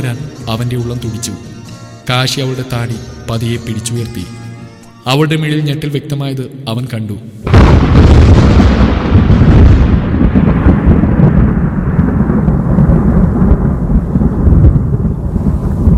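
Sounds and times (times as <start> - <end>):
speech: 0.0 - 4.4, 5.0 - 8.4
thunder rolling as a deep broad rumble: 7.4 - 15.9.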